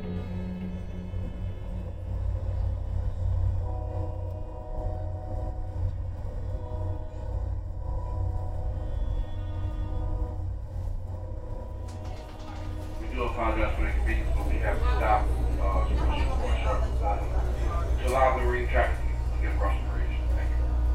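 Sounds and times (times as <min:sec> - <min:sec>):
constant mechanical drone of a passenger train: 0:00.0 - 0:20.9
faint tonal hums: 0:00.0 - 0:20.9
passenger train rumbling along the rails: 0:00.0 - 0:20.9.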